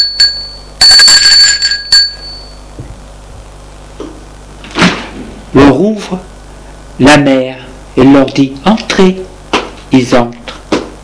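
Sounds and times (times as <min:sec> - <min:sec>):
doorbell ringing at a parents' house: 0:00.0 - 0:02.7
speech: 0:05.5 - 0:06.3, 0:07.0 - 0:09.3, 0:09.9 - 0:10.4.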